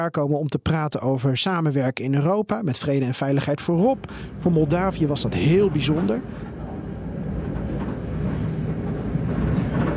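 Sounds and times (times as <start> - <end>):
speech: 0.0 - 6.6
passenger train running on rails: 3.4 - 9.9.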